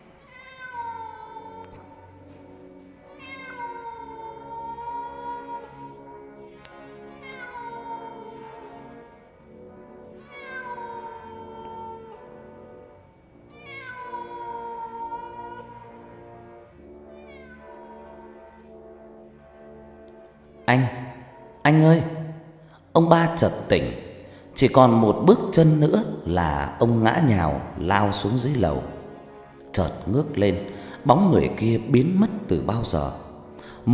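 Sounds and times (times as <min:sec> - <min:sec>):
cat meowing mournfully in drawn-out wails: 0:00.2 - 0:02.2, 0:03.1 - 0:06.1, 0:07.1 - 0:09.0, 0:10.2 - 0:12.3, 0:13.5 - 0:16.2, 0:17.1 - 0:18.7
speech: 0:20.7 - 0:21.0, 0:21.6 - 0:22.1, 0:23.0 - 0:24.0, 0:24.6 - 0:29.0, 0:29.8 - 0:33.2.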